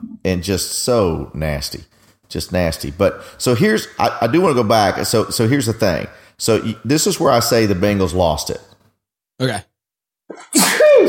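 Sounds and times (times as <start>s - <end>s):
speech: 0.2s - 8.7s, 9.4s - 9.7s, 10.3s - 11.0s
single loud sneeze: 10.3s - 11.0s.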